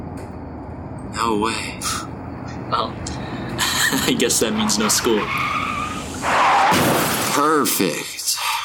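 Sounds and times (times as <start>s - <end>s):
speech: 1.2s - 2.1s, 2.7s - 3.3s, 3.9s - 5.6s, 6.7s - 8.1s
car tires squealing while braking and skidding: 3.6s - 8.6s
loud car crash of impact: 4.4s - 8.0s.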